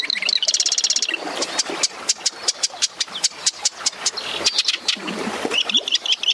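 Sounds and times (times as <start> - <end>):
male marsh wren singing in a marsh: 0.0 - 6.3.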